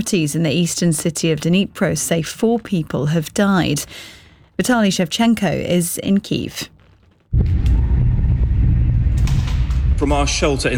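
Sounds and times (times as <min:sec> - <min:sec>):
speech: 0:00.0 - 0:06.7, 0:07.3 - 0:07.8, 0:10.0 - 0:10.7
faint crackles: 0:00.1 - 0:07.8
loud deep boom from a missile strike in Kyiv during an overnight aerial attack: 0:07.3 - 0:10.7.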